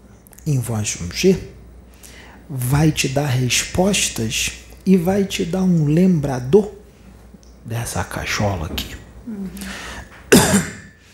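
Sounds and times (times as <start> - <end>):
speech: 0.5 - 1.6, 2.5 - 6.8, 7.6 - 9.8, 10.5 - 10.7
boy coughing: 10.3 - 10.9.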